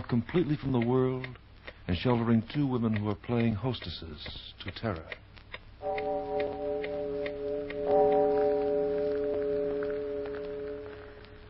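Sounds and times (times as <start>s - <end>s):
speech: 0.1s - 5.2s
clock ticking: 0.8s - 10.8s
clock chiming deep resonant strokes: 5.8s - 11.4s.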